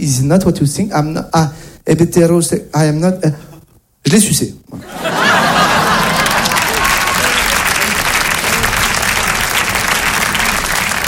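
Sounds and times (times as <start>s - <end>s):
speech: 0.0s - 5.6s
audience chuckles: 4.8s - 8.6s
large audience applauding: 5.0s - 11.0s
scattered cheers: 5.9s - 8.8s.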